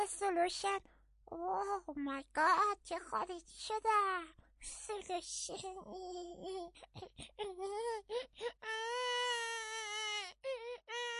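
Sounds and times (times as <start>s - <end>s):
speech: 0.1s - 9.8s
baby crying: 6.0s - 11.1s.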